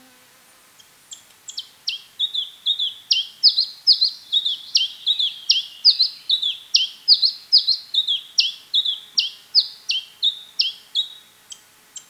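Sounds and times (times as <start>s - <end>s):
house sparrow singing: 1.5s - 11.2s.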